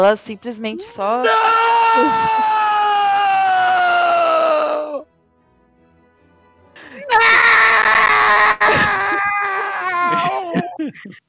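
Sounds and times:
speech: 0:00.0 - 0:02.7
person screaming in pain: 0:01.2 - 0:05.0, 0:06.9 - 0:10.8
laughter: 0:01.9 - 0:02.8, 0:06.8 - 0:11.2.

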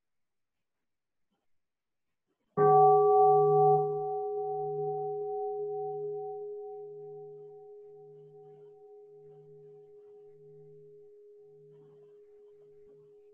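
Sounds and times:
single deep bell struck during a Buddhist dharma talk: 0:02.6 - 0:11.7.

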